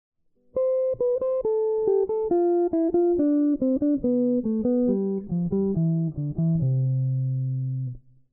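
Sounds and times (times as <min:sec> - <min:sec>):
jazz guitar improvisation: 0:00.4 - 0:08.1.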